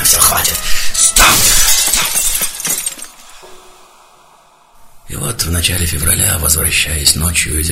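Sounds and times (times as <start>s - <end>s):
window glass pane shattering with a sharp crash: 0.1s - 3.4s
tinkling glass shards: 0.3s - 3.4s
speech: 5.6s - 7.7s.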